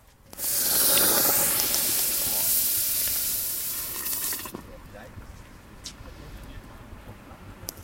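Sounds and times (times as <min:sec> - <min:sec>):
roaring hiss of steam from hot stone in wort: 0:00.3 - 0:04.6
hot basalt stone sizzling in brewing wort: 0:00.3 - 0:04.7.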